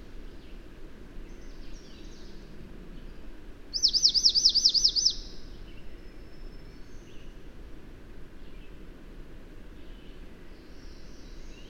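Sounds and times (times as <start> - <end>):
faint background hiss: 0.0 - 11.6
bird singing high slurred whistles: 3.8 - 5.4.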